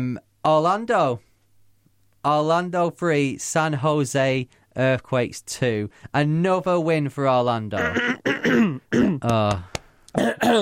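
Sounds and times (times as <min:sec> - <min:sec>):
speech: 0:00.0 - 0:01.3, 0:02.2 - 0:10.5
person clearing throat: 0:07.8 - 0:09.5, 0:10.1 - 0:10.5.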